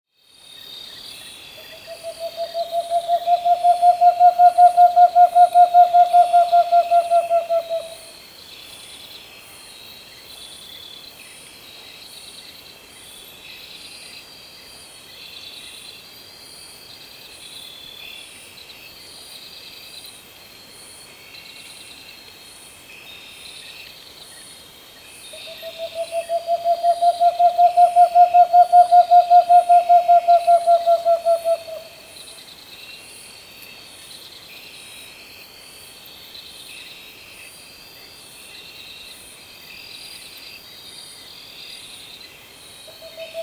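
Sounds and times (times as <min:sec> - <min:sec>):
Marshall's screech owl Megascops marshalli: 0:01.8 - 0:08.1, 0:25.5 - 0:32.1.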